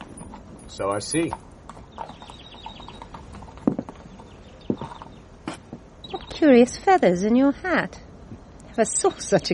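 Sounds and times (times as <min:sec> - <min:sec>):
horse hooves clip-clopping on hard ground: 0:00.0 - 0:06.5
faint birds chirping: 0:00.0 - 0:09.5
speech: 0:00.7 - 0:02.1, 0:06.4 - 0:08.0, 0:08.8 - 0:09.5.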